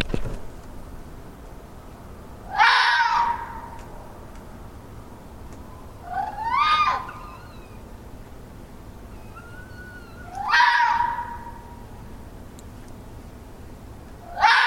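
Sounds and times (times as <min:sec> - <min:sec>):
steady quiet hiss: 0:00.0 - 0:14.6
urban wild red fox screaming at midnight in Dún Laoghaire, Ireland: 0:02.5 - 0:03.8, 0:06.0 - 0:07.9, 0:09.1 - 0:11.8, 0:14.2 - 0:14.6.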